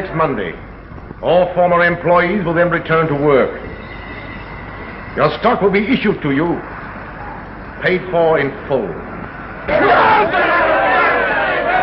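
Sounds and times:
speech: 0:00.0 - 0:03.7, 0:05.2 - 0:06.7, 0:07.8 - 0:10.6
large happy crowd cheering and shouting: 0:09.7 - 0:11.8.

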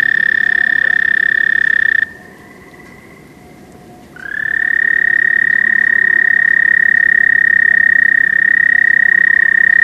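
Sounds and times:
fainter American toad trill: 0:00.0 - 0:02.2, 0:04.2 - 0:09.8
American toad long steady high musical trill: 0:00.0 - 0:03.2, 0:04.2 - 0:09.8.

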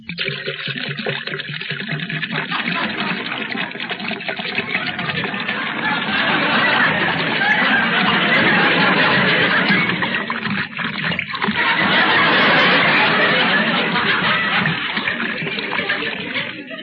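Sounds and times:
water pouring into a glass: 0:00.0 - 0:16.8
laughter: 0:02.2 - 0:16.8.

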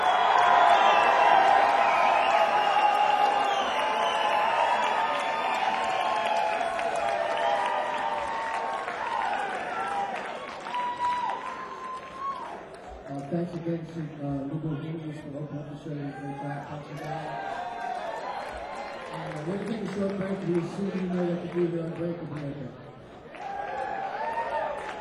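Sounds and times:
scattered cheers and whoops: 0:00.0 - 0:12.8, 0:16.1 - 0:19.2, 0:23.2 - 0:24.9
crowd applause: 0:00.0 - 0:13.8, 0:16.0 - 0:24.9
speech: 0:13.5 - 0:17.6, 0:19.1 - 0:22.8.

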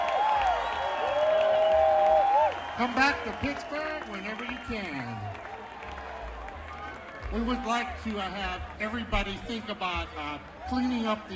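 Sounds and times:
crowd in Pittsburgh applauding a string band: 0:00.0 - 0:11.3
sustained whistles from a crowd: 0:00.3 - 0:04.8
speech: 0:02.8 - 0:05.5, 0:07.3 - 0:11.3.

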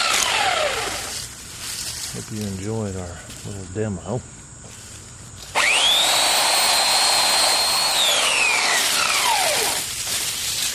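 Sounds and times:
electric chainsaw running: 0:00.0 - 0:01.2, 0:05.5 - 0:10.7
speech: 0:02.3 - 0:04.4.

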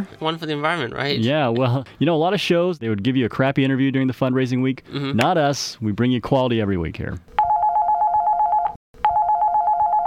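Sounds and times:
speech: 0:00.0 - 0:07.4
telephone ringing with a steady electronic trill: 0:07.4 - 0:10.0.

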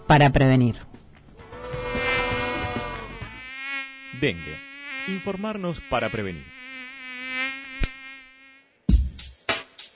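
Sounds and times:
speech: 0:00.1 - 0:01.0, 0:04.2 - 0:06.6
mosquito whine: 0:01.4 - 0:08.9.

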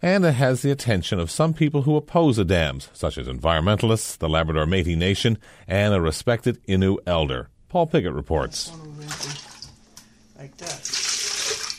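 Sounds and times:
speech: 0:00.0 - 0:09.3
drinking water sloshing and splashing in a bucket: 0:08.9 - 0:09.8, 0:10.6 - 0:11.7.

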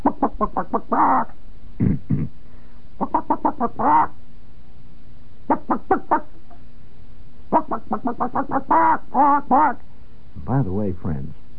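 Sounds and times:
man imitating chicken clucks and squawks: 0:00.0 - 0:02.4, 0:03.0 - 0:04.1, 0:05.5 - 0:06.3, 0:07.5 - 0:09.8
speech: 0:00.2 - 0:02.4, 0:03.6 - 0:04.2, 0:08.0 - 0:09.8, 0:10.6 - 0:11.3.

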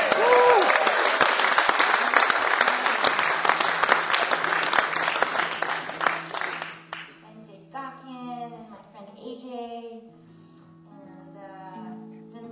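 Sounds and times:
audience applause for performers at a tribute show: 0:00.0 - 0:07.1.

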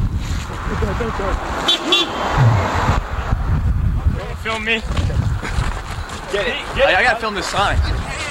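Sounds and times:
car passing with steady road rumble: 0:00.1 - 0:04.3
speech: 0:01.0 - 0:02.1, 0:04.5 - 0:05.2, 0:06.3 - 0:08.1.

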